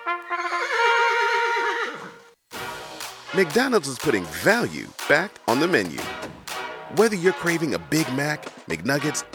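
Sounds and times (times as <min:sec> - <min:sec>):
horse neighing: 0:00.3 - 0:02.3
speech: 0:03.3 - 0:09.3.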